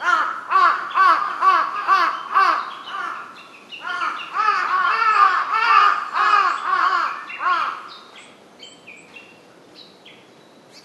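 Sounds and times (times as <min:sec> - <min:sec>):
large-billed crow calling with harsh caws: 0:00.0 - 0:07.9.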